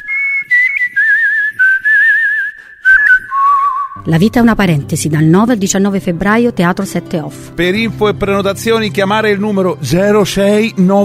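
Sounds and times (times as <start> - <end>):
person whistling a warbling melody imitating a canary: 0.0 - 4.1
speech: 4.1 - 11.0.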